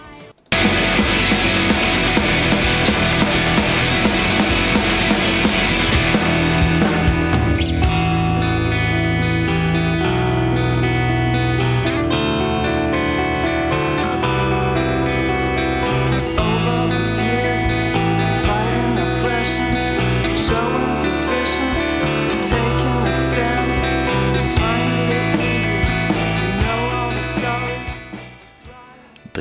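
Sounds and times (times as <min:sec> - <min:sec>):
loud post-hardcore band music with distorted guitars and heavy drums: 0:00.1 - 0:28.8.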